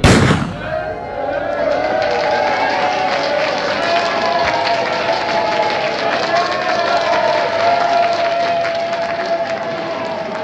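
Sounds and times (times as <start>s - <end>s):
starting pistol shot at the start of a race: 0.0s - 0.9s
crowd noise with voices as racers move off: 0.0s - 10.4s.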